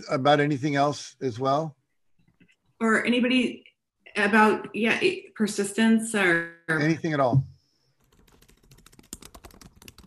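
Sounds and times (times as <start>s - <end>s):
speech: 0.0s - 1.8s, 2.8s - 7.5s
fast typing on a computer keyboard: 8.0s - 10.0s.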